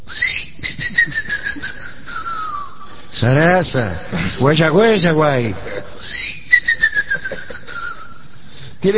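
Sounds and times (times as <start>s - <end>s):
shrill pulsing whistle sliding downward in pitch: 0.1s - 2.9s, 6.0s - 8.2s
speech: 3.2s - 5.8s.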